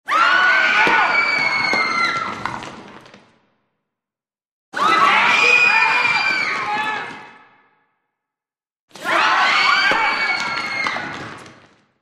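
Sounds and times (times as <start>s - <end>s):
medium mixed crowd screaming: 0.0s - 2.6s, 4.8s - 7.2s, 9.0s - 11.4s.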